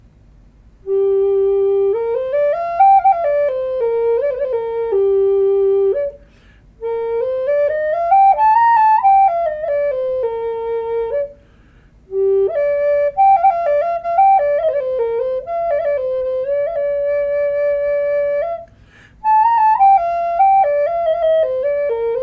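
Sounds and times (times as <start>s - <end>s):
flutes playing G4 note: 0.8s - 22.2s.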